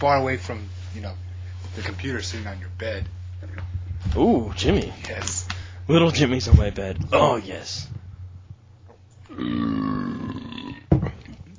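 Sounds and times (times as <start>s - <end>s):
speech: 0.0s - 8.0s, 9.4s - 10.6s
long loud rumbling burp: 9.2s - 11.4s.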